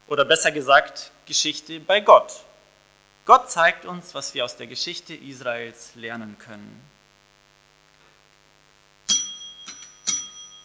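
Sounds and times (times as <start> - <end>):
speech: 0.1 - 2.5, 3.2 - 7.0
school bell ringing: 9.1 - 10.6.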